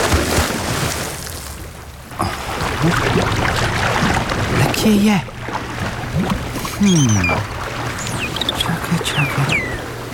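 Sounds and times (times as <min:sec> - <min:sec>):
rushing water: 0:00.0 - 0:10.1
churning bubbling sea water: 0:01.8 - 0:10.1
speech: 0:04.8 - 0:05.4, 0:06.2 - 0:07.5, 0:09.0 - 0:09.8.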